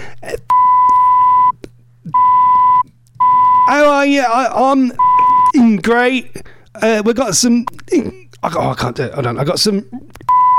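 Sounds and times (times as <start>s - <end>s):
censor bleep effect covering swearing: 0.5s - 3.8s, 5.0s - 5.6s, 10.3s - 10.5s
speech: 3.7s - 10.1s.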